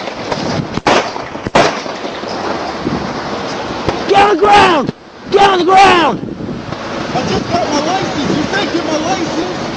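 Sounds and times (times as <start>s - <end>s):
gunshots fired by a state trooper at a petrol station: 0.2s - 2.2s
speech: 4.3s - 6.3s, 7.1s - 9.6s.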